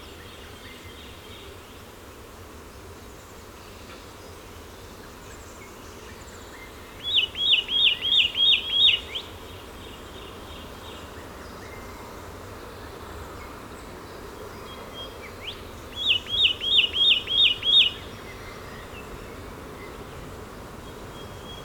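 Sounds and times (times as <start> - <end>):
steady background hiss: 0.0 - 21.6
Satin flycatcher Myiagra cyanoleuca calls: 7.0 - 9.4, 15.0 - 19.1.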